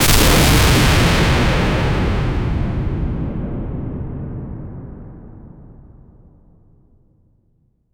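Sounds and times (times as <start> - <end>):
cinematic lightning blast: 0.0 - 5.1.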